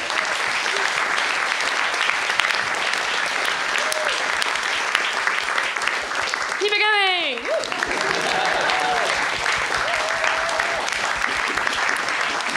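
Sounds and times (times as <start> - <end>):
large audience applause: 0.0 - 12.5
laughter: 7.4 - 12.5.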